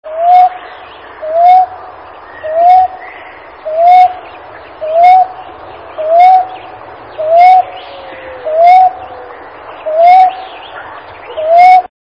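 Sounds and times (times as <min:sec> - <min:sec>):
Common Ground Dove calling: 0:00.1 - 0:11.9.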